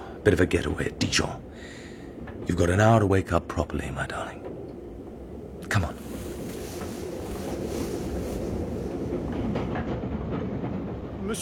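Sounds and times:
passenger sleeper train rumbling along the rails: 0:00.0 - 0:11.4
speech: 0:00.2 - 0:01.8, 0:02.4 - 0:04.6, 0:05.7 - 0:06.0
rushing hiss: 0:05.8 - 0:09.3.

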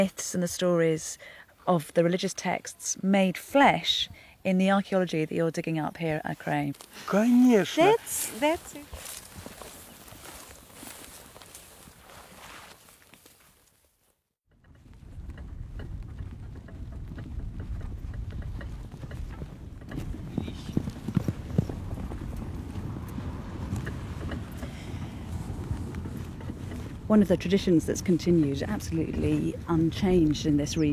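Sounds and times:
speech: 0:00.0 - 0:09.2, 0:27.1 - 0:30.9
outdoor noise: 0:00.0 - 0:30.9
horse hooves clip-clopping at a walking rhythm: 0:05.6 - 0:13.5, 0:14.6 - 0:30.9.

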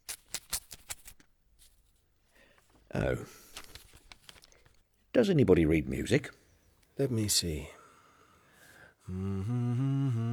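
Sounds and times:
envelope paper rustling and tearing as it is opened: 0:00.0 - 0:01.2
speech: 0:03.0 - 0:03.4, 0:05.2 - 0:06.4, 0:07.0 - 0:07.8, 0:09.1 - 0:10.3.

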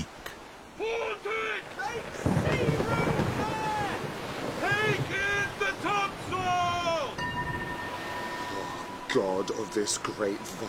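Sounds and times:
gusting wind: 0:00.0 - 0:10.6
rough sea waves surging and roaring: 0:00.0 - 0:10.6
high wavering cries over the storm: 0:07.0 - 0:10.2
speech: 0:09.2 - 0:10.6.

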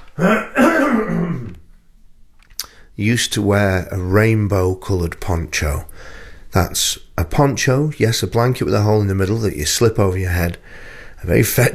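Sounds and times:
person clearing throat: 0:00.1 - 0:01.6
speech: 0:00.2 - 0:00.5, 0:03.0 - 0:11.7.

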